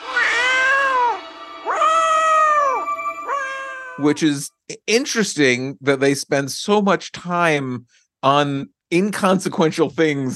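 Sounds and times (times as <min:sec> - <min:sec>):
cat stuck in a tree yowling: 0:00.0 - 0:04.2
speech: 0:04.0 - 0:10.3.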